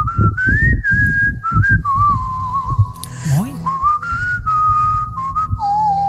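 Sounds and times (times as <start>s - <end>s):
man whistling a flowing song melody: 0.0s - 6.0s
brief voiced sound: 3.0s - 4.0s.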